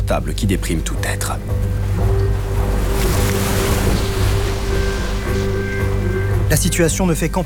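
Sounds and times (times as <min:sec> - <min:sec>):
speech: 0:00.1 - 0:02.1, 0:06.5 - 0:07.4
rough sea surging and crashing in a storm: 0:01.4 - 0:06.9
strong gusts of wind roaring across the sea: 0:01.5 - 0:06.4.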